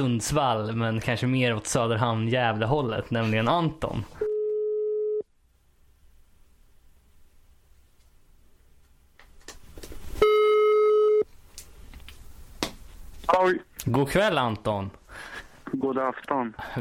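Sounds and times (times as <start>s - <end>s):
speech: 0.0s - 4.2s, 13.5s - 16.8s
telephone ringback tone on an outgoing call: 4.2s - 5.2s, 10.2s - 11.2s.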